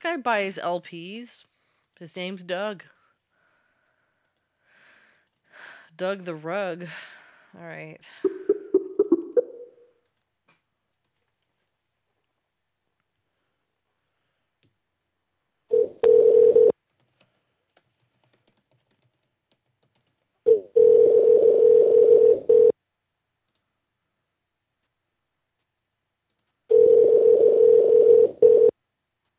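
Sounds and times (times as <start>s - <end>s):
speech: 0.1s - 3.0s, 5.6s - 8.4s
phone dialing: 15.7s - 16.7s, 20.5s - 22.7s, 26.7s - 28.7s
telephone ringback tone: 15.7s - 16.7s, 20.5s - 22.7s, 26.7s - 28.7s.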